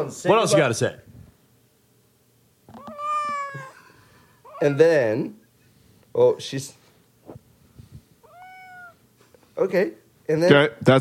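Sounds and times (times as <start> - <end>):
speech: 0.0 - 1.1, 4.6 - 5.4, 6.2 - 7.4, 9.6 - 10.9
cat meowing: 2.7 - 3.8, 8.2 - 9.0.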